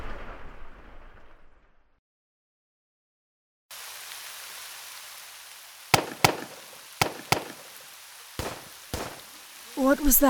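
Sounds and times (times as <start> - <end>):
steady hiss: 3.7 - 10.2
pistol shots: 5.9 - 7.8, 8.4 - 9.7
speech: 9.8 - 10.2.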